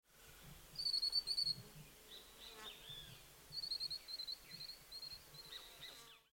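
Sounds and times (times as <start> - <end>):
Green throated Mango bird: 0.8 - 1.6, 2.2 - 6.3.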